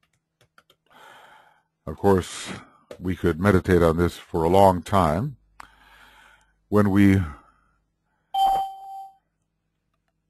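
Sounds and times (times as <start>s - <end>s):
speech: 1.9s - 5.4s, 6.7s - 7.4s
small bell-like chime from a two-computer setup: 8.4s - 9.2s.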